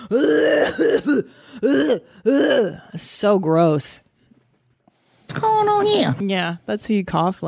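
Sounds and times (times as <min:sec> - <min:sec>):
loud hacking cough: 0:00.0 - 0:02.7
speech: 0:00.1 - 0:04.0, 0:05.3 - 0:07.4.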